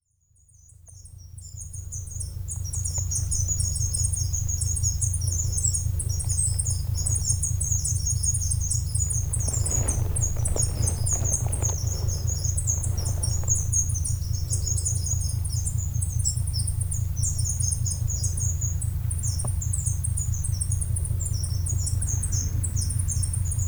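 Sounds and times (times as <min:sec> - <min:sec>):
birds: 0:01.5 - 0:23.6.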